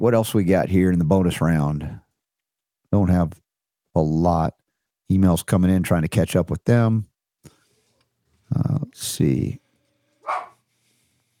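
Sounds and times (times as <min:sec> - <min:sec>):
speech: 0:00.0 - 0:02.0, 0:02.9 - 0:03.4, 0:04.0 - 0:07.1, 0:08.5 - 0:09.6
dog barking: 0:10.2 - 0:10.6.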